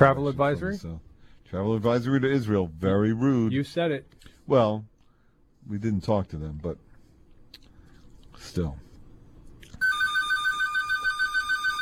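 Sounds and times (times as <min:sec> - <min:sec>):
speech: 0:00.0 - 0:04.9, 0:05.6 - 0:06.8, 0:08.4 - 0:08.8
electronic telephone ringtone: 0:09.8 - 0:11.8.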